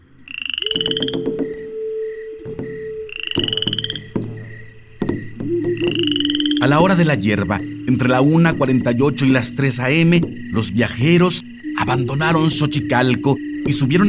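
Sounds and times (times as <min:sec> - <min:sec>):
dense chorus of frogs croaking: 0:00.0 - 0:14.0
recurring high trilling note: 0:00.6 - 0:03.9, 0:05.4 - 0:08.2, 0:11.6 - 0:14.0
speech: 0:06.6 - 0:14.0.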